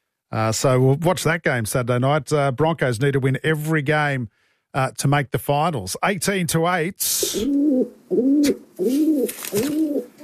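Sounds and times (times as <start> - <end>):
speech: 0.3 - 10.2
pigeon cooing: 7.2 - 10.2.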